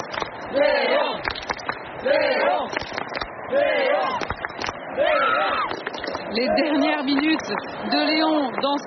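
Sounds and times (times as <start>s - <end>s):
sharp claps and bangs: 0.0s - 0.4s, 1.2s - 1.9s, 2.7s - 3.3s, 4.1s - 4.8s, 5.7s - 6.3s
huge stadium crowd cheering and chanting: 0.0s - 8.8s
speech: 6.4s - 8.8s.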